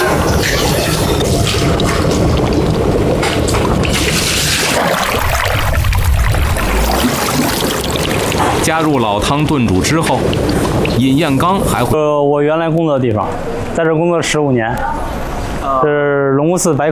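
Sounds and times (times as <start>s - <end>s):
running water rinsing food: 0.0s - 12.0s
speech: 8.7s - 16.9s.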